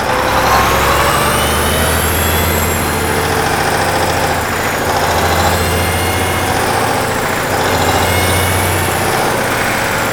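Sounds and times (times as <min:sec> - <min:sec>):
crane motor: 0:00.0 - 0:10.1.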